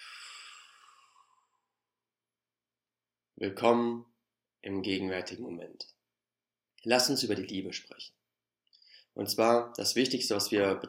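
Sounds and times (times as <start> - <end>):
long breathy exhale: 0.0 - 1.7
speech: 3.4 - 6.0, 6.8 - 8.2, 9.2 - 10.8.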